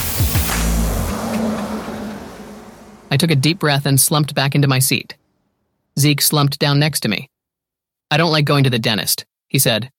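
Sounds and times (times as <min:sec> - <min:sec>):
school bus engine accelerating out of a warehouse onto a road: 0:00.0 - 0:05.0
speech: 0:03.1 - 0:05.2, 0:06.0 - 0:07.3, 0:08.1 - 0:09.9.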